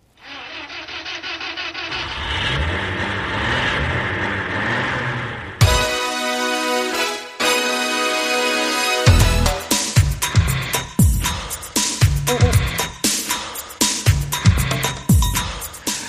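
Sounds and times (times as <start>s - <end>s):
old car engine cranking and idling roughly: 0.0s - 6.0s
sustained musical tone: 5.6s - 10.0s
driving beat-heavy tune: 5.6s - 16.0s.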